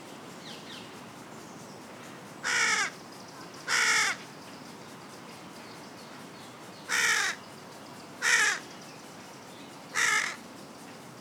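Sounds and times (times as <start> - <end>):
carrion crow Corvus corone giving harsh hoarse caws: 2.4 - 2.9, 3.7 - 4.2, 6.9 - 7.4, 8.2 - 8.6, 10.0 - 10.4.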